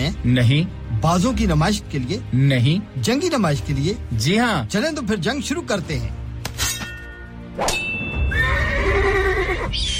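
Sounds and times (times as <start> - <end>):
speech: 0.1 - 6.2
horse neighing at a historical equestrian show in Leeds: 8.3 - 9.8.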